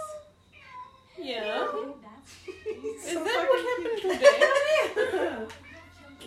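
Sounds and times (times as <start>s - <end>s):
cat meowing: 0.5s - 1.8s
laughter: 2.3s - 5.5s.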